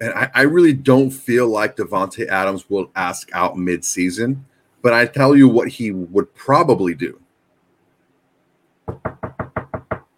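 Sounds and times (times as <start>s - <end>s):
speech: 0.0s - 7.2s, 8.9s - 9.2s
knocking on a door: 8.9s - 10.1s.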